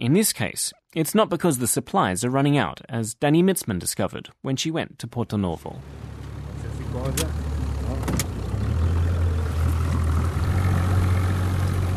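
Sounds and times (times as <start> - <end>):
speech: 0.0 - 6.1, 7.0 - 8.3
motorboat engine droning on a boat trip across a bay: 5.9 - 11.9.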